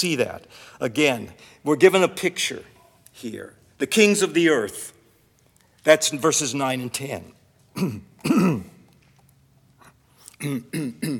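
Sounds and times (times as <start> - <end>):
speech: 0.0 - 5.0, 5.8 - 8.7, 10.4 - 11.1
man clearing his throat: 7.8 - 8.8, 10.4 - 11.1.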